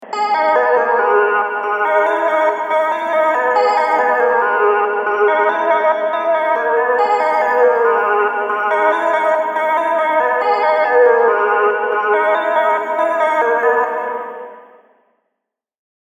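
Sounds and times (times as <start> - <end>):
MIDI melody in G sharp minor: 0.0 - 14.7.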